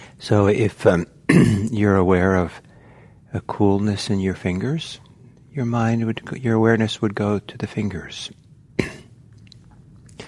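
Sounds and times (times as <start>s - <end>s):
speech: 0.2s - 2.7s, 3.3s - 8.4s
small cough: 1.3s - 1.8s, 8.8s - 9.2s.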